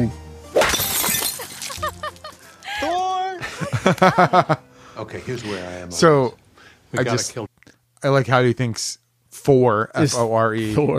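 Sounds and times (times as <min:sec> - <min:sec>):
glass shattering: 0:00.5 - 0:02.3
glass shards tinkling and clinking as they settle: 0:00.6 - 0:01.9
laughter: 0:01.3 - 0:04.6
speech: 0:03.9 - 0:10.9.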